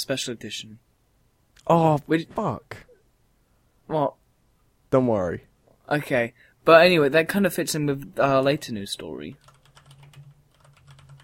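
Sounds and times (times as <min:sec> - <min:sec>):
speech: 0:00.0 - 0:00.9, 0:01.7 - 0:02.9, 0:03.9 - 0:04.2, 0:04.9 - 0:09.5
typing on a computer keyboard: 0:09.3 - 0:11.2.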